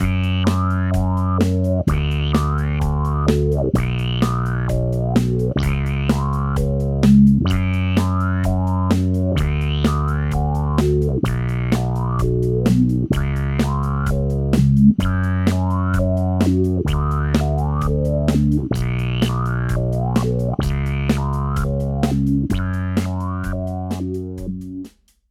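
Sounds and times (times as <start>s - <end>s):
underwater LFO bass with no sync: 0.0s - 24.9s.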